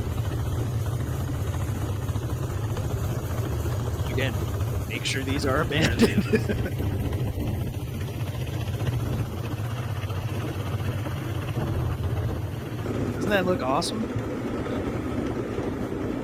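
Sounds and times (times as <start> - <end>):
small motor of a motorized rail car droning: 0.0 - 16.2
speech: 4.2 - 7.1, 13.3 - 14.2
laughter: 5.6 - 7.0.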